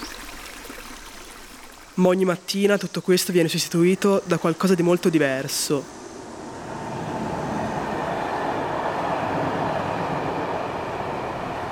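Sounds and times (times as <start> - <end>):
speech: 2.0 - 6.0
train rumbling on rails with low clattering: 3.5 - 11.7.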